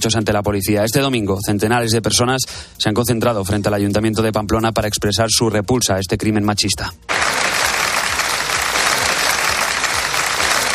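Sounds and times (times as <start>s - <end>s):
speech: 0.0s - 7.2s
large crowd applauding: 7.1s - 10.7s.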